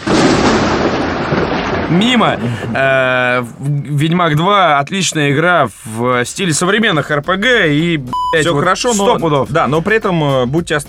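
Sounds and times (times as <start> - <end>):
loud rumbling thunder clap sound effect: 0.0 - 3.2
speech: 1.9 - 10.8.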